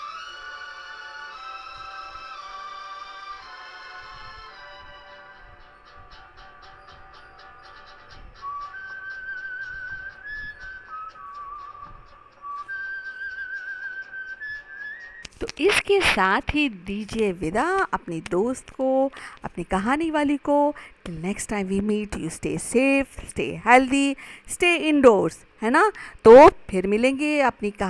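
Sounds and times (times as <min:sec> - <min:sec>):
instrumental music interlude with bright whistle-like melody: 0:00.0 - 0:18.9
speech: 0:15.5 - 0:27.8.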